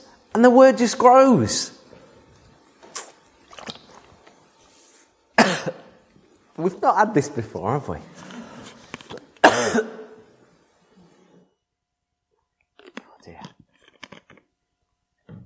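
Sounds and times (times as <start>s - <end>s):
speech: 0.4s - 1.8s, 6.6s - 8.2s
man coughing while preaching in church: 5.4s - 6.0s, 9.4s - 10.2s.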